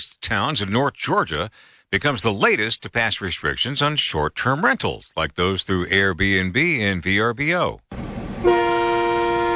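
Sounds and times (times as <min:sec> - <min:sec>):
speech: 0:00.0 - 0:08.6
scenic railway train horn tooting: 0:08.4 - 0:09.5.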